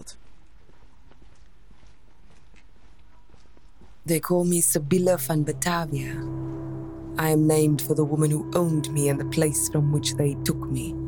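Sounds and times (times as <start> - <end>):
footsteps walking along a street: 0.0 - 4.4
speech: 4.1 - 6.4, 7.2 - 11.0.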